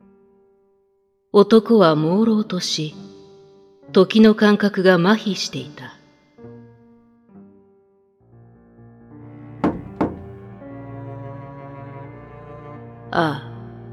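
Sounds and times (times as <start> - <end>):
speech: 1.3 - 3.0, 3.9 - 5.9, 13.2 - 13.4
knocking on a door: 9.6 - 10.4.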